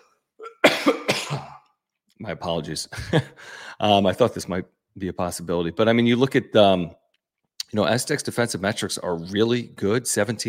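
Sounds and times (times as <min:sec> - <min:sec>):
person coughing harshly: 0:00.0 - 0:01.8
speech: 0:02.2 - 0:07.0, 0:07.7 - 0:10.4.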